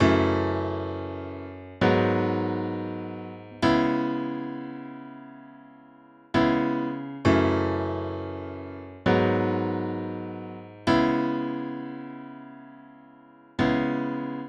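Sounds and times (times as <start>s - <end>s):
Steinway piano playing R&B: 0.0s - 5.5s, 6.4s - 12.7s.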